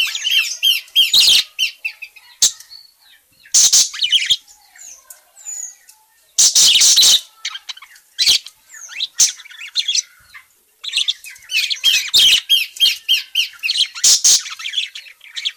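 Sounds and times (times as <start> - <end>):
parakeet harsh high chattering calls: 0.0 - 2.6, 3.5 - 4.4, 6.4 - 10.2, 10.8 - 15.5.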